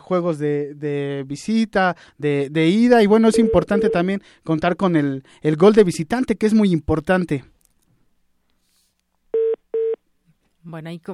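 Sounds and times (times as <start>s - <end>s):
speech: 0.1s - 7.5s, 10.6s - 11.1s
telephone tone beeps of a call coming in: 9.4s - 10.0s.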